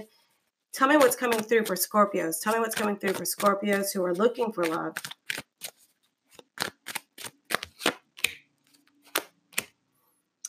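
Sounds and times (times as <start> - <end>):
speech: 0.0 - 5.2
tarot cards shuffled and pulled from the deck: 2.4 - 9.8.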